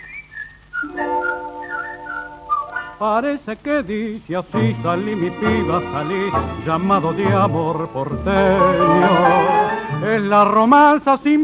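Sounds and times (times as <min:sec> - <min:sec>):
whistled signal call: 0:00.0 - 0:03.0
speech: 0:03.0 - 0:11.4.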